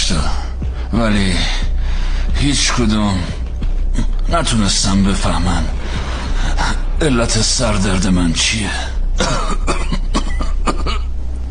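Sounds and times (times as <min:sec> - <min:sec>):
steady low hum: 0:00.0 - 0:11.4
speech: 0:00.1 - 0:01.6, 0:02.4 - 0:03.4, 0:04.0 - 0:05.8, 0:06.5 - 0:09.6
patient with chest pain dry coughing: 0:09.1 - 0:11.2.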